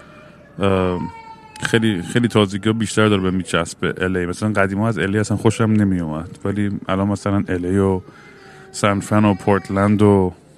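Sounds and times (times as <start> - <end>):
baby crying in an airport: 0.0 - 10.4
low hum in an airport: 0.0 - 10.5
speech: 0.6 - 10.4.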